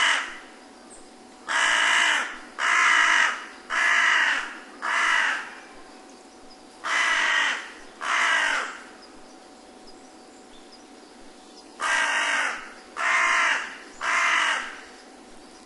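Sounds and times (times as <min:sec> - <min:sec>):
carrion crow giving harsh raspy caws: 0:00.0 - 0:00.5, 0:01.5 - 0:05.6, 0:06.8 - 0:08.9, 0:11.8 - 0:14.9.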